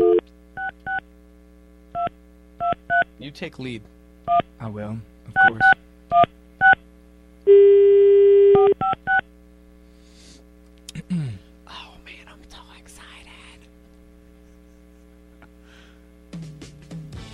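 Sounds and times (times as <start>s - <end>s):
steady telephone line tone: 0.0s - 0.8s, 7.5s - 9.2s
steady low hum: 0.0s - 16.4s
speech: 3.2s - 6.4s.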